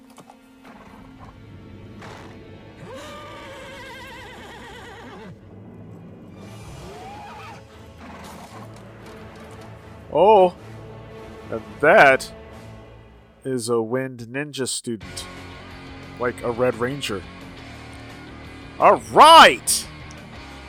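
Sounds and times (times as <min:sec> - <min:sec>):
horses neighing: 0:02.8 - 0:05.4
speech: 0:10.2 - 0:10.6, 0:11.5 - 0:12.4, 0:13.4 - 0:15.4, 0:16.2 - 0:17.4, 0:18.8 - 0:19.9.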